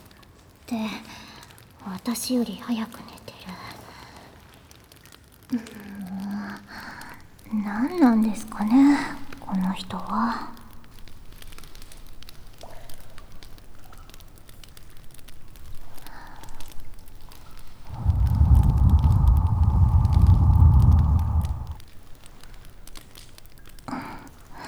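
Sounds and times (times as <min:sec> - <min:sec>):
bonfire crackling with small pops and snaps: 0:00.0 - 0:24.6
speech: 0:00.7 - 0:01.2, 0:01.8 - 0:03.6, 0:07.6 - 0:10.5
deep rumbling roar: 0:07.0 - 0:24.6.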